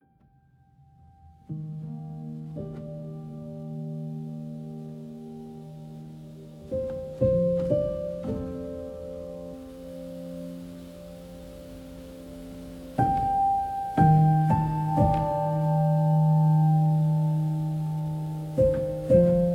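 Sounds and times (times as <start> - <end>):
sleep music: 0.0 - 19.5.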